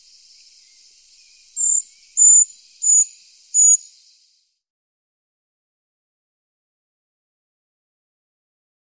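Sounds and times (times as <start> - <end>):
Eurasian treecreeper giving thin very high sibilant calls: 0.0 - 4.6.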